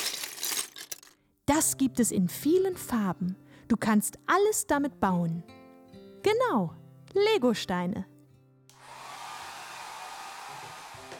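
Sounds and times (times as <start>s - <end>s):
speech: 1.5s - 5.6s, 6.2s - 8.1s
hair dryer blowing with faint motor whine: 8.7s - 11.1s.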